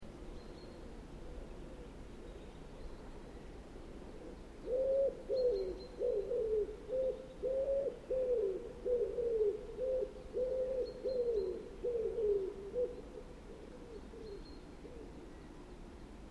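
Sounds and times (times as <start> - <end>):
wood pigeon cooing: 4.2 - 15.5.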